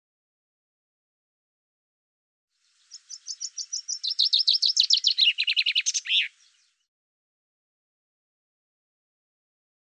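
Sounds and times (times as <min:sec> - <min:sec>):
common chaffinch song: 0:02.5 - 0:06.9.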